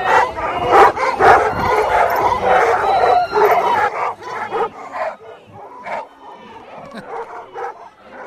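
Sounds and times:
golden retrievers barking and yipping excitedly in Scotland: 0:00.0 - 0:08.2
people laughing: 0:06.5 - 0:07.7.

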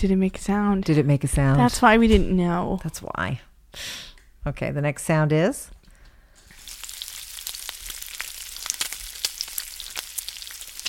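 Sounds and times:
speech: 0:00.0 - 0:05.8
bacon frying with popping and crackling: 0:06.4 - 0:10.8.

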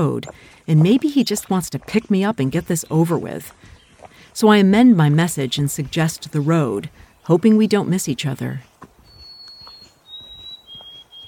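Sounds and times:
speech: 0:00.0 - 0:03.8, 0:04.4 - 0:08.7
outdoor noise: 0:00.0 - 0:11.2
white-throated sparrow singing descending song: 0:09.0 - 0:11.2.

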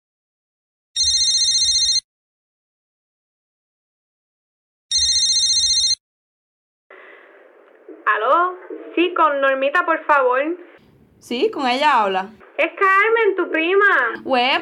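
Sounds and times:
telephone ringing with electronic trill: 0:01.0 - 0:02.0, 0:04.9 - 0:06.0
speech: 0:08.1 - 0:14.5.

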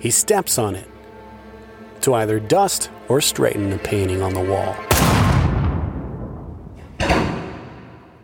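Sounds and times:
speech: 0:00.0 - 0:01.0, 0:02.0 - 0:05.2
heavy boom: 0:04.9 - 0:07.9
sharp gunshot with rolling echo: 0:04.9 - 0:07.9.

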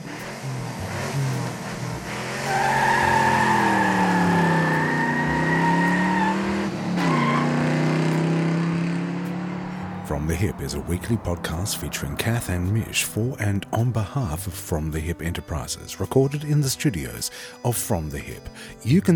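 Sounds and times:
car tires squealing and skidding: 0:00.0 - 0:13.5
car engine revving: 0:00.0 - 0:13.9
speech: 0:10.2 - 0:19.1.

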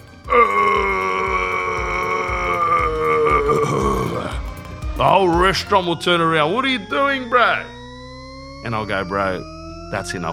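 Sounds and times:
huge drawn-out burp in a restaurant after guzzling coke: 0:00.3 - 0:04.9
speech: 0:05.0 - 0:07.8, 0:08.6 - 0:10.3.

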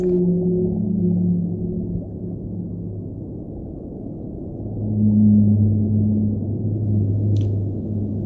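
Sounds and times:
low drawn-out whale calls underwater: 0:00.0 - 0:03.1, 0:04.7 - 0:08.2.

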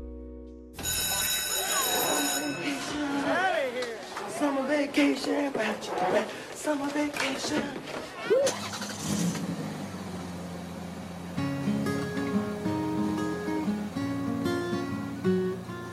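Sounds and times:
brief ringing tone: 0:00.8 - 0:03.1
voices talking in a bar and grill parking lot: 0:01.0 - 0:08.6
steady car and engine rumble in a parking lot: 0:08.5 - 0:15.9.

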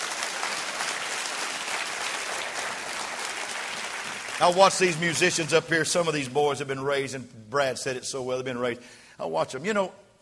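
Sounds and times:
audience clapping hands in praise of God: 0:00.0 - 0:05.5
speech: 0:04.4 - 0:10.0.

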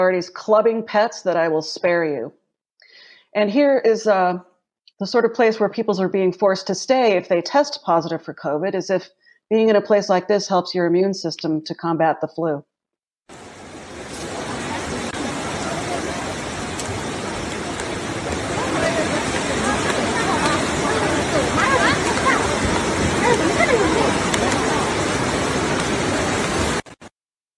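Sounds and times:
speech: 0:00.0 - 0:02.4, 0:03.3 - 0:12.7
heavy rain pouring in through a roof: 0:13.3 - 0:27.0
faint murmuring voices: 0:18.4 - 0:25.0.

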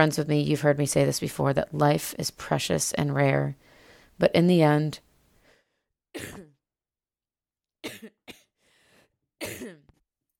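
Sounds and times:
speech: 0:00.0 - 0:05.1, 0:06.1 - 0:06.5, 0:09.4 - 0:09.8
harsh throaty coughs: 0:06.2 - 0:06.6, 0:07.8 - 0:08.6, 0:09.4 - 0:09.9.

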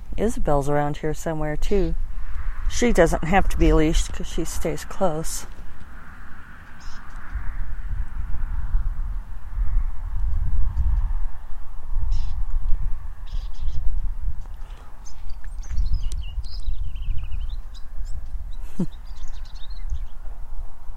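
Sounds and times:
steady low rumble of wind and movement: 0:00.0 - 0:20.9
speech: 0:00.2 - 0:02.1, 0:02.7 - 0:05.5
unidentified bird species chirping and cawing outdoors: 0:06.7 - 0:07.3, 0:12.1 - 0:12.4, 0:13.2 - 0:13.9, 0:14.6 - 0:20.2.

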